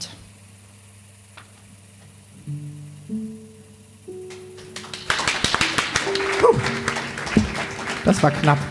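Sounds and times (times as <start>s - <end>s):
sustained musical notes stepping upward: 2.3s - 8.6s
hand clapping along to a song: 4.1s - 8.6s
speech: 8.1s - 8.6s.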